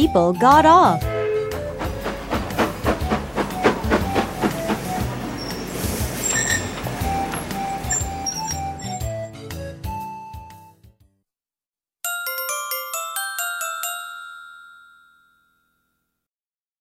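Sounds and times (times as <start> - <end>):
speech: 0.0 - 1.1
train wheels clickety-clack over the rails: 1.3 - 9.2.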